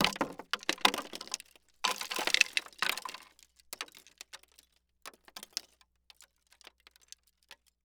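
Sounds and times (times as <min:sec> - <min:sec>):
wood debris crashing on wood pallet: 0:00.0 - 0:03.3.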